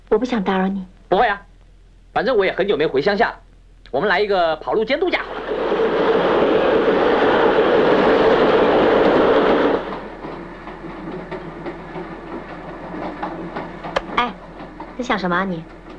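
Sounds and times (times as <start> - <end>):
speech: 0.1 - 1.5, 2.1 - 5.3, 15.0 - 15.8
train running on rails: 5.1 - 15.9.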